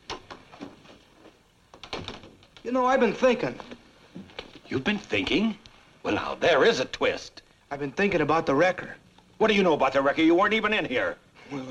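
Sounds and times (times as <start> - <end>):
door being pushed shut with clattering knocks and creaks: 1.7 - 2.6
speech: 2.6 - 3.7, 4.7 - 11.7.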